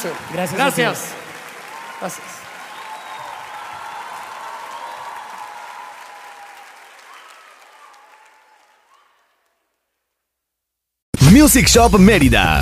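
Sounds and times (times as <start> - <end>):
speech: 0.0 - 1.2, 2.0 - 2.5, 11.3 - 12.5
crowd applauding: 0.0 - 10.0.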